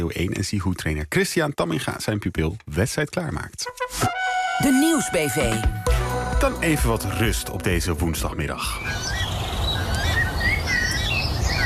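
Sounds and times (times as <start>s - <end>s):
speech: 0.0s - 9.2s
weka chirping and whistling: 8.6s - 11.6s.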